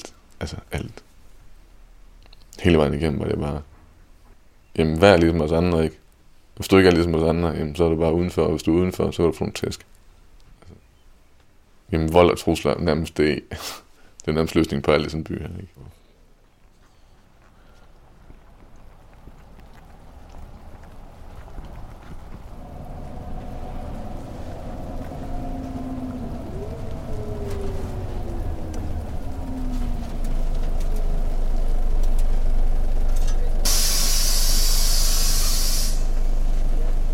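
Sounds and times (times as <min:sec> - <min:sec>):
traffic rumble at a bus station: 0:00.0 - 0:37.1
speech: 0:00.4 - 0:01.0, 0:02.6 - 0:03.7, 0:04.8 - 0:06.0, 0:06.6 - 0:09.9, 0:11.9 - 0:16.0
gliding engine tones from passing vehicles: 0:17.3 - 0:37.1
steady rain at a bus station: 0:17.6 - 0:37.1
loud hiss of bus air brakes: 0:33.6 - 0:36.4.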